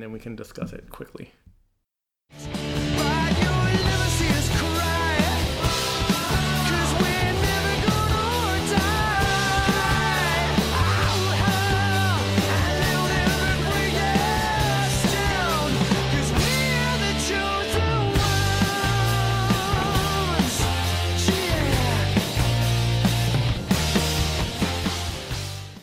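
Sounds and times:
speech: 0.0 - 1.5
loud full-band rock music with guitars and drums: 2.4 - 25.8
driving bass line in rock music: 2.5 - 25.8.

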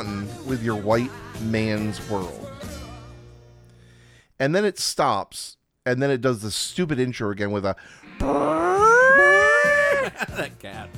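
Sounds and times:
speech: 0.0 - 2.5, 4.4 - 8.6, 10.2 - 10.9
cat yowling: 8.2 - 10.2
laughter: 9.6 - 10.9.

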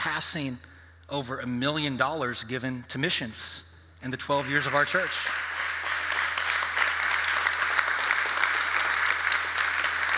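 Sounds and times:
speech: 0.0 - 5.5
crowd applauding: 4.4 - 10.1.

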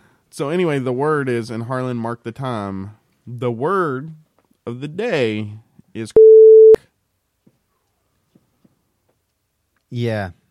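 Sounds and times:
speech: 0.3 - 6.3, 9.9 - 10.4
censor bleep: 6.2 - 6.8.

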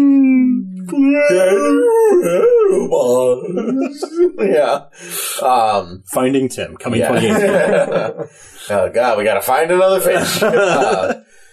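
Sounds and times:
person imitating a whale call: 0.0 - 4.5
laughter: 1.3 - 5.3, 6.8 - 8.4, 9.9 - 11.2
speech: 3.3 - 11.3.

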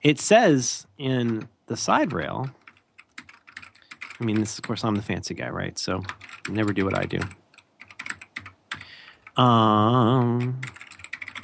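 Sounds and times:
speech: 0.0 - 2.6, 4.2 - 7.4, 9.4 - 10.8
rapid clacky computer keyboard typing: 1.2 - 5.2, 6.0 - 9.5, 10.2 - 11.4.

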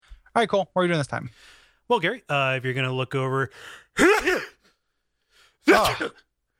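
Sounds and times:
speech: 0.4 - 4.5, 5.7 - 6.2
person sneezing: 4.0 - 4.6, 5.6 - 6.3.

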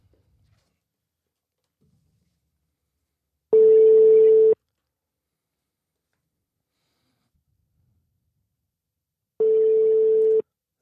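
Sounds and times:
telephone ringback tone of an outgoing call: 3.6 - 4.6, 9.4 - 10.4.

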